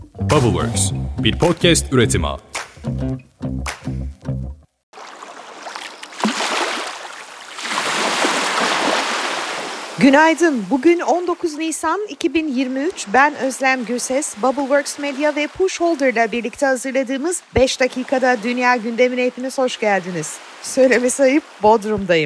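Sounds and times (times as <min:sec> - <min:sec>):
speech: 0:00.2 - 0:03.8, 0:10.0 - 0:22.2
gentle sea waves lapping at the shore: 0:04.9 - 0:22.2.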